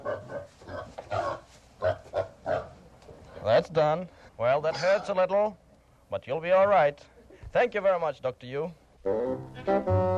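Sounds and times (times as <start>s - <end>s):
pig grunting and squealing: 0.0s - 2.8s, 4.7s - 5.2s
speech: 3.5s - 10.1s.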